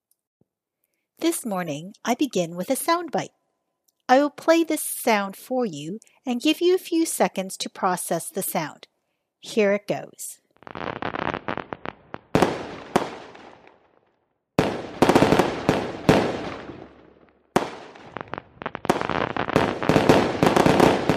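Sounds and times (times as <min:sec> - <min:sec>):
speech: 0:01.2 - 0:03.4, 0:04.1 - 0:11.0
fireworks exploding in bangs and crackles: 0:10.6 - 0:21.1.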